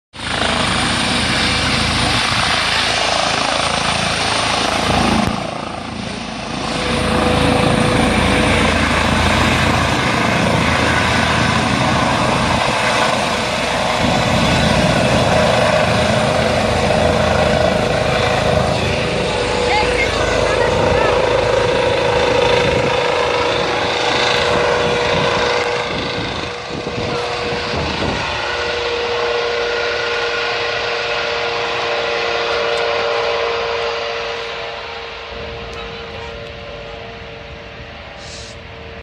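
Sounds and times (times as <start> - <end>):
helicopter taking off: 0.1 - 39.0.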